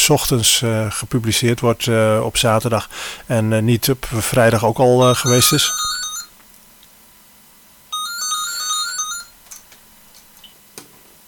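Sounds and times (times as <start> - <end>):
speech: 0.0 - 6.0
landline telephone ringing as a wake-up alarm: 5.0 - 6.4, 7.9 - 9.4.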